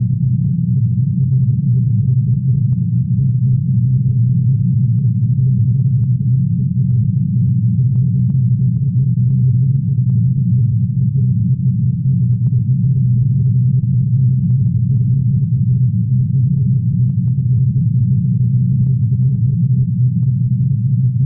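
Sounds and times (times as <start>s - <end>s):
ambience: 0.0s - 21.2s.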